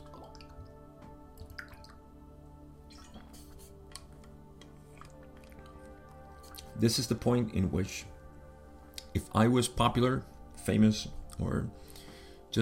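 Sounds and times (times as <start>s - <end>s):
person sipping and swallowing water: 0.0s - 2.0s, 2.9s - 6.8s
speech: 6.8s - 8.2s, 9.2s - 11.9s.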